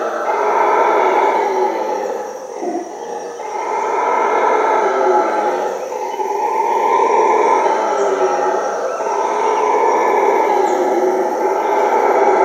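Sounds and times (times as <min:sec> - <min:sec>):
howler monkey howling: 0:00.0 - 0:12.4.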